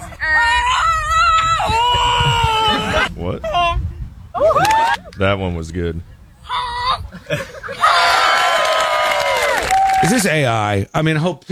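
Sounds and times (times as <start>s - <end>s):
person imitating goose honks at a goose honking competition: 0.0s - 8.0s
laughter: 0.0s - 11.3s
speech: 5.2s - 6.6s, 7.2s - 7.8s, 10.0s - 11.5s.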